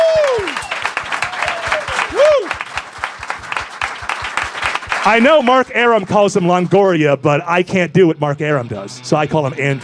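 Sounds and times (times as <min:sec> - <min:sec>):
sliding vocal whoops: 0:00.0 - 0:02.6
audience applause: 0:00.0 - 0:06.0
speech: 0:05.0 - 0:09.8.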